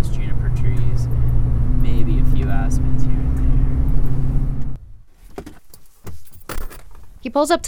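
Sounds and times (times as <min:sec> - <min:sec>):
car road rumble on a snowy county road heard from inside the cabin: 0:00.0 - 0:07.2
clicks and rattles: 0:05.3 - 0:07.3
brief mechanical whir: 0:05.7 - 0:07.0
speech: 0:07.4 - 0:07.6.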